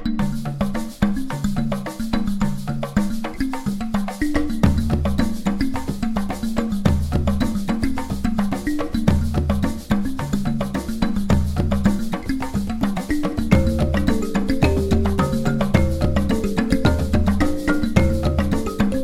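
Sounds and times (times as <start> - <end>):
Nigerian beat: 0.2 - 19.0.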